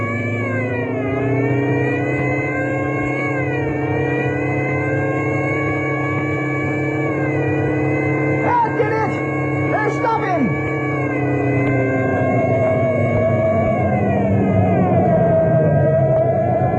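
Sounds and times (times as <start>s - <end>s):
car engine revving with supercharger and emergency speed gear engaged: 0.0s - 16.7s.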